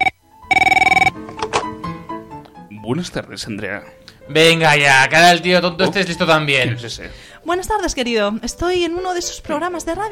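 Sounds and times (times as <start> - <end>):
telephone ringing as a call is placed: 0.0 - 1.6
speech: 2.9 - 10.1.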